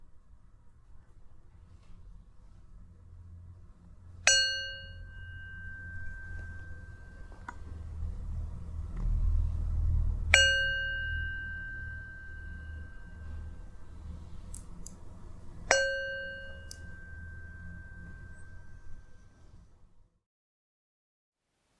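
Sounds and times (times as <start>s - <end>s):
low quiet hum: 0.0s - 20.1s
meditation gong ringing with a clear shimmering tone: 4.2s - 8.1s, 10.1s - 14.3s, 15.3s - 19.3s.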